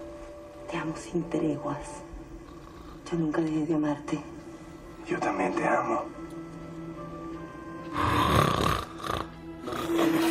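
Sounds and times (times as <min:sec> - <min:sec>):
speech: 0:00.8 - 0:02.1, 0:03.1 - 0:04.4, 0:05.1 - 0:06.2
person snoring loudly with rasping inhalations: 0:07.9 - 0:10.3.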